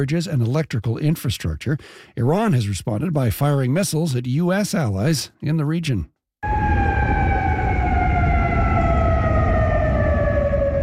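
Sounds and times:
speech: 0.0s - 6.8s
air raid siren wailing: 6.4s - 10.8s.

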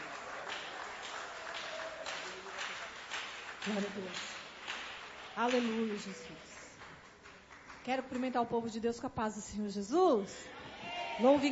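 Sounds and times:
audience applauding: 0.0s - 8.0s
speech: 3.6s - 4.4s, 5.4s - 6.5s, 7.9s - 10.6s, 11.2s - 11.5s.

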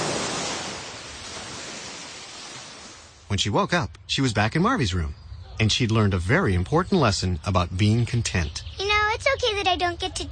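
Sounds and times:
ocean waves: 0.0s - 3.3s
speech: 3.3s - 8.7s, 9.3s - 10.2s.

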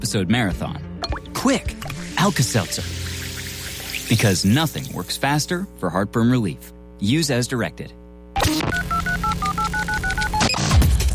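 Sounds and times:
speech: 0.0s - 3.1s, 4.1s - 8.8s
touch-tone keypad beeps dialing a phone number: 8.7s - 10.4s.

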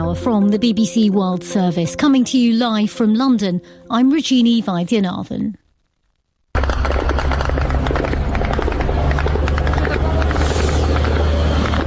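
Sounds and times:
speech: 0.1s - 5.6s
crackling bursts and impacts as military drones strike targets: 5.6s - 11.8s
Ukrainian military drones flying over Russia: 6.6s - 11.8s.

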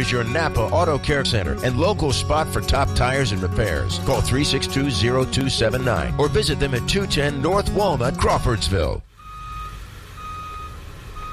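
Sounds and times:
speech: 0.0s - 9.1s
truck engine rumble: 0.0s - 11.3s
truck reversing beeps: 9.2s - 11.3s.

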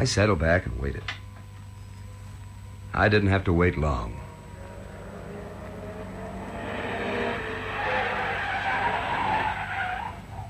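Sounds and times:
speech: 0.0s - 1.2s, 2.9s - 4.2s
car engine rumble: 4.1s - 9.6s
car tires screeching as it skids to a halt: 4.3s - 10.4s.

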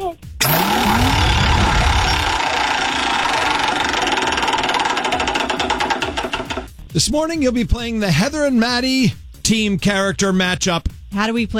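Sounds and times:
prize wheel whoosh as it is spun: 0.4s - 6.7s
speech: 7.0s - 11.5s.

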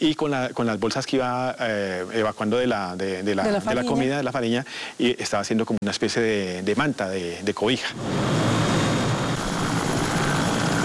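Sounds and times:
speech: 0.0s - 8.5s
several helicopters flying overhead: 8.0s - 10.8s.

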